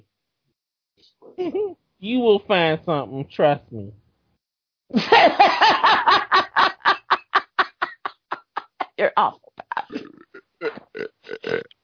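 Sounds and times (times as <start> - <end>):
speech: 1.2 - 4.0, 4.9 - 5.8, 9.0 - 11.7
laughter: 5.0 - 9.0
long croaky burp: 9.6 - 11.8.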